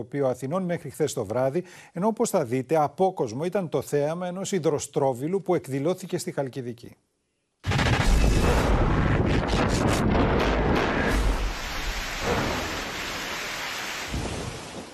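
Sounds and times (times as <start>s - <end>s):
speech: 0.0s - 7.1s
rumbling thunder: 7.7s - 13.2s
heavy roaring rain in a violent thunderstorm: 7.7s - 14.9s.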